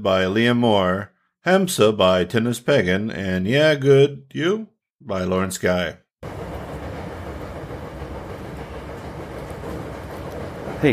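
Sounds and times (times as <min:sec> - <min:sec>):
speech: 0:00.0 - 0:06.4
train riding the rails in Osaka: 0:06.2 - 0:10.9.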